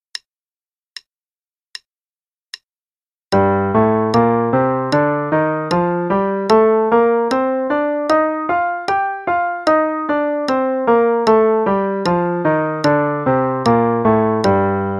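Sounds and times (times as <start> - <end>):
G natural minor scale played in eighth notes over two octaves: 3.3 - 14.9.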